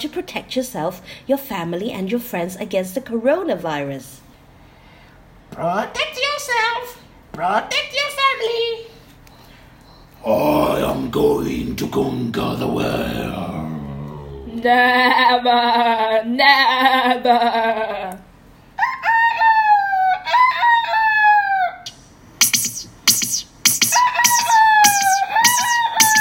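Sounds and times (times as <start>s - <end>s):
speech: 0.0s - 4.2s, 5.6s - 8.9s, 10.2s - 13.6s, 14.6s - 18.2s
rooster crowing: 18.8s - 21.9s, 23.8s - 26.1s.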